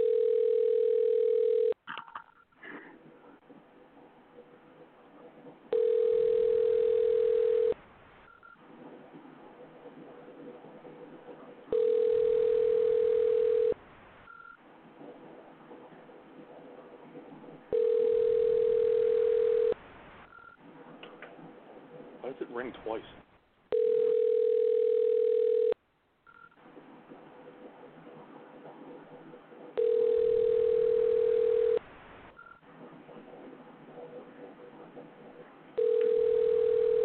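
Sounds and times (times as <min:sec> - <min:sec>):
phone ringback tone heard through a handset: 0:00.0 - 0:01.8, 0:05.7 - 0:08.6, 0:11.7 - 0:14.6, 0:17.7 - 0:19.8, 0:23.7 - 0:26.6, 0:29.8 - 0:31.8, 0:35.8 - 0:37.0.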